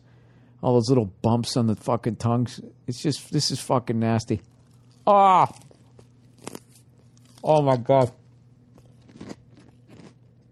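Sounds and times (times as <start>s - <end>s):
speech: 0.6s - 5.7s, 7.4s - 8.2s
person biting and chewing broccoli: 4.4s - 10.4s.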